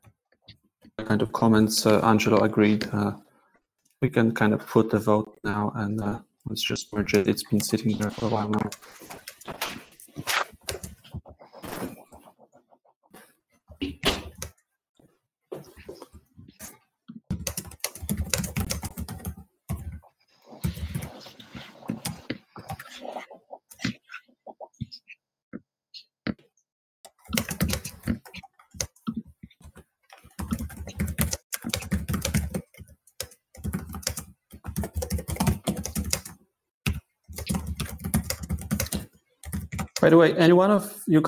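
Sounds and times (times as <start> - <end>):
speech: 1.1 - 3.2, 4.0 - 9.2, 40.2 - 41.2
computer keyboard typing to take meeting minutes: 7.0 - 11.8, 17.3 - 20.0, 20.6 - 21.2, 27.1 - 40.2.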